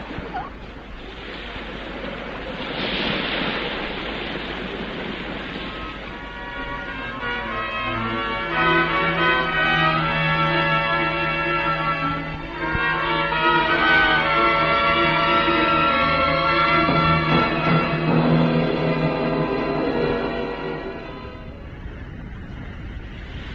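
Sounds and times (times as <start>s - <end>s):
heavy ocean surf crashing: 0.0s - 23.5s
sustained tonal musical-sounding layer: 6.2s - 21.6s.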